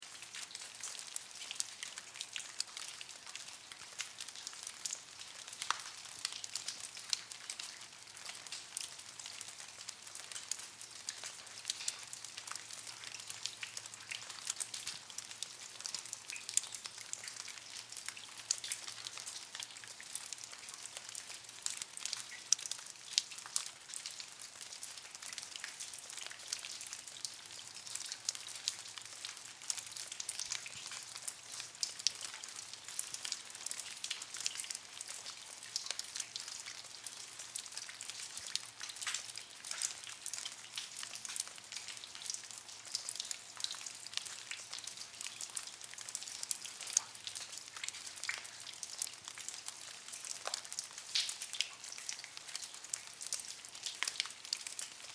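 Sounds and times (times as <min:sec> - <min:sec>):
water dripping in a cave: 0:00.0 - 0:55.1.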